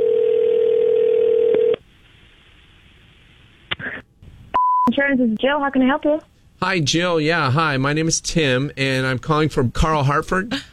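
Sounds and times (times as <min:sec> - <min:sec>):
steady telephone tone: 0:00.0 - 0:01.8
speech: 0:05.0 - 0:10.7.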